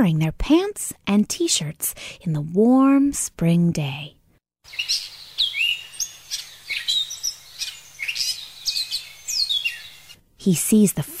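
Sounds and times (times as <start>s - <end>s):
speech: 0.0s - 5.2s, 10.4s - 11.1s
birds chirping: 4.6s - 10.2s
faint insect-like hum: 4.7s - 10.2s.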